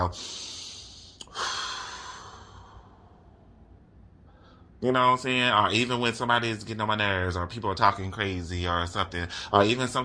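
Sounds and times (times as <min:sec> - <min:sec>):
speech: 0:00.0 - 0:00.5, 0:04.8 - 0:10.0
deep breath taken to release stress: 0:00.1 - 0:03.6, 0:04.2 - 0:04.8.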